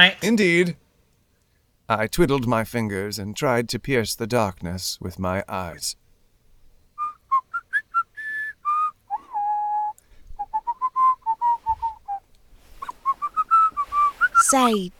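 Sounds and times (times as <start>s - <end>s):
speech: 0.0s - 0.8s, 1.9s - 6.0s, 14.5s - 14.9s
person whistling a lilting tune: 7.0s - 12.2s, 12.8s - 14.8s.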